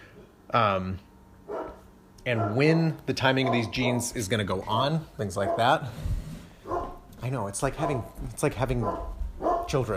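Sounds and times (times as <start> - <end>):
speech: 0.5 - 1.1, 2.2 - 6.2, 7.2 - 9.9
dog barking with yelping edge: 1.5 - 2.8, 3.4 - 4.2, 5.4 - 5.8, 6.6 - 7.0, 7.8 - 9.9.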